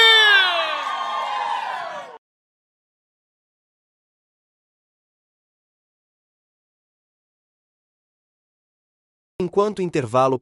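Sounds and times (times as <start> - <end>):
crowd shouting and cheering: 0.0 - 2.2
speech: 9.4 - 10.4.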